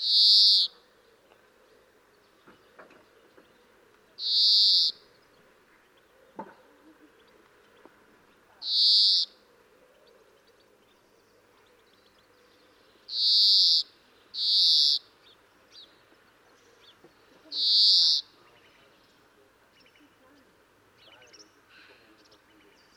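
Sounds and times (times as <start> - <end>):
European greenfinch Chloris chloris nasal buzzing wheezes: 0.0 - 0.8, 4.2 - 5.0, 8.6 - 9.3, 13.1 - 15.0, 17.6 - 18.3
faint background noise: 0.0 - 22.9.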